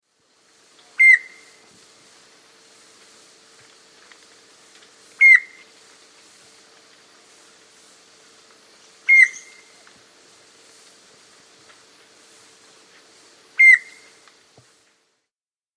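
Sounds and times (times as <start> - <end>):
faint steady hum: 0.0 - 15.3
rufous antpitta calling clear whistled notes in South America: 13.6 - 14.1.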